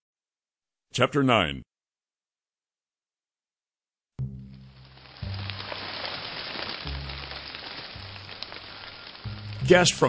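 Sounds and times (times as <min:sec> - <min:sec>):
speech: 0:01.0 - 0:01.7, 0:09.7 - 0:10.0
rain pouring: 0:04.2 - 0:10.0.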